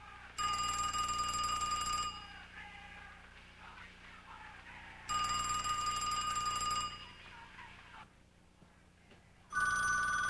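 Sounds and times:
telephone ringing: 0.4s - 2.5s, 5.0s - 7.5s, 9.5s - 10.2s.

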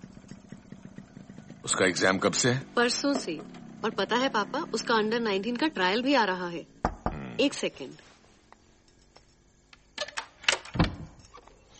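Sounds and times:
speech: 1.6s - 6.7s, 7.4s - 8.1s
door being closed: 10.0s - 11.2s.

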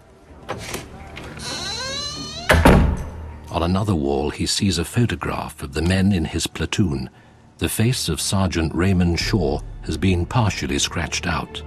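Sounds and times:
door of a shabby room creaking on its hinges: 0.5s - 3.2s
speech: 3.6s - 11.6s.

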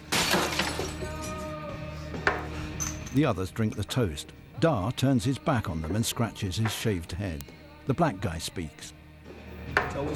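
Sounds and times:
small schnapps glass smashing against a wall: 0.0s - 1.4s
glass shards tinkling and settling: 0.1s - 1.5s, 2.7s - 3.9s
speech: 3.1s - 9.0s, 9.8s - 10.1s.

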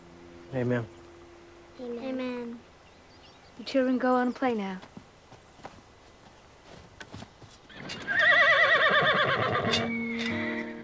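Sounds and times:
speech: 0.5s - 1.0s, 1.8s - 2.7s, 3.6s - 5.0s
horse hooves knocking and shuffling on hard ground: 4.3s - 10.8s
horse whinnying at a Union army camp: 7.7s - 10.8s.

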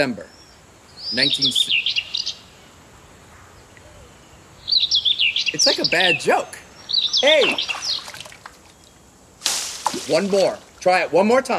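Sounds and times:
speech: 0.0s - 0.4s, 1.1s - 2.0s, 5.5s - 6.6s, 7.2s - 8.0s, 10.1s - 11.5s
small bird chirping: 0.0s - 9.2s.

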